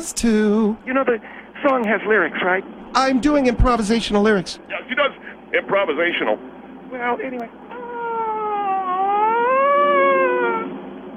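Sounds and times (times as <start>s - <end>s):
speech: 0.0s - 7.6s
siren wailing: 7.7s - 10.8s.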